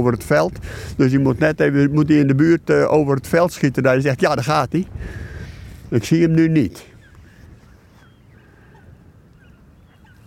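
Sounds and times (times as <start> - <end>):
speech: 0.0 - 5.3, 5.9 - 6.9
steady low rumble of wind or field noise: 0.0 - 10.2
large flock of birds honking and crying overhead: 6.7 - 10.2.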